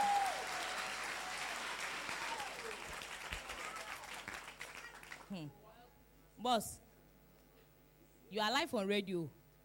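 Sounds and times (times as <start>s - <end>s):
audience applause: 0.0s - 5.3s
speech: 5.3s - 5.6s, 6.4s - 6.8s, 8.3s - 9.4s.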